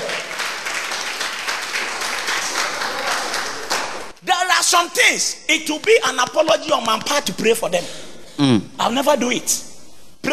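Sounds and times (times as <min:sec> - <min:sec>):
church audience clapping: 0:00.0 - 0:04.2
speech: 0:04.7 - 0:10.3.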